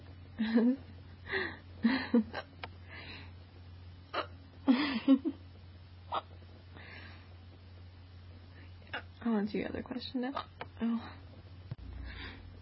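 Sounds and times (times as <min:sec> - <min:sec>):
faint steady low hum: 0:00.0 - 0:12.6
speech: 0:00.4 - 0:02.5, 0:05.0 - 0:05.4, 0:09.2 - 0:11.2
hiccups: 0:04.1 - 0:04.4, 0:06.1 - 0:06.4.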